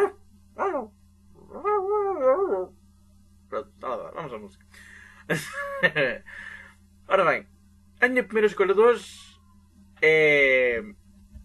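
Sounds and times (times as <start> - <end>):
dog howling cry: 0.0 - 2.8
speech: 4.4 - 6.5, 7.1 - 9.2, 10.0 - 11.0.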